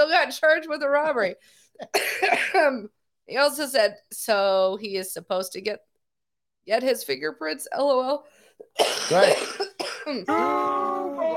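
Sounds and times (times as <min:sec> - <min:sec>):
speech: 0:00.1 - 0:05.9, 0:06.6 - 0:11.1
person coughing: 0:01.8 - 0:02.8, 0:08.7 - 0:10.3
throat clearing: 0:08.8 - 0:10.3
strained voiced sound of a person recovering: 0:10.1 - 0:11.3.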